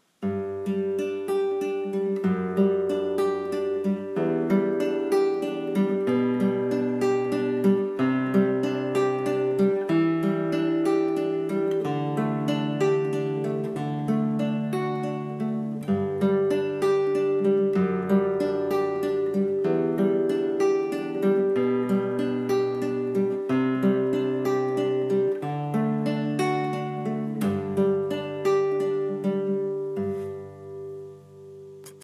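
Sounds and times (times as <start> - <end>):
acoustic guitar instrument sample: 0.0 - 32.0.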